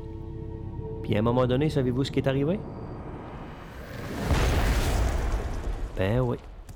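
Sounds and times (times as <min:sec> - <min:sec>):
speech: 0:01.1 - 0:02.8, 0:06.0 - 0:06.5
deep heavy boom from a fog cannon: 0:03.9 - 0:06.6.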